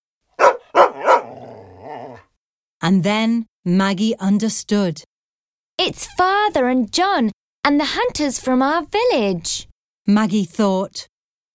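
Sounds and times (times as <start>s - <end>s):
dog barking loudly: 0.3s - 2.2s
speech: 2.9s - 5.1s, 5.8s - 11.1s.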